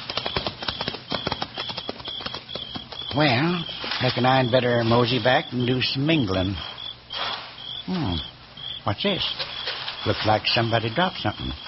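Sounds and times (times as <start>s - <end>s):
horse hooves clip-clopping: 0.0s - 4.3s
speech: 3.1s - 6.7s, 7.9s - 11.6s.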